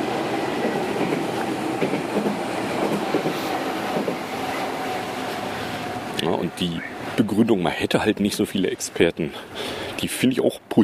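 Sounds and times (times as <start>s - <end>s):
train rumbling past: 0.0s - 9.5s
speech: 6.6s - 10.8s.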